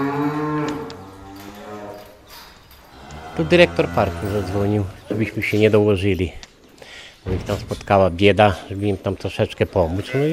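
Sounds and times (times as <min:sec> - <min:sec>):
cow mooing: 0:00.0 - 0:02.2, 0:02.9 - 0:05.0
speech: 0:03.4 - 0:06.4, 0:07.2 - 0:10.3.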